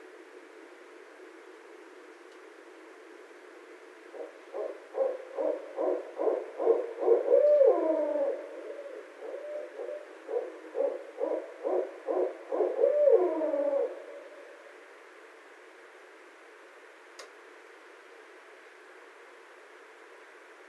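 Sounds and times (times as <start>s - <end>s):
barred owl hooting: 4.1s - 14.6s.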